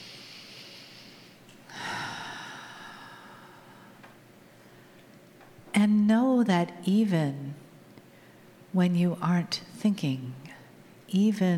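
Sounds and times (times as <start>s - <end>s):
slow deep breath in: 0.0s - 5.1s
speech: 5.8s - 7.4s, 8.7s - 10.4s, 11.1s - 11.5s.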